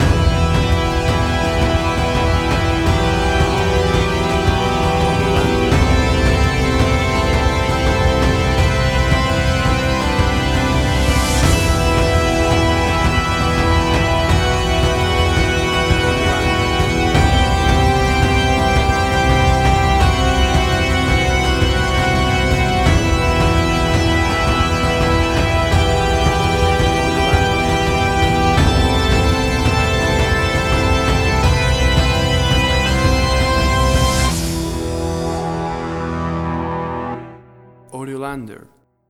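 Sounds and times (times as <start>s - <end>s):
atmospheric warm hybrid action music track: 0.0s - 37.8s.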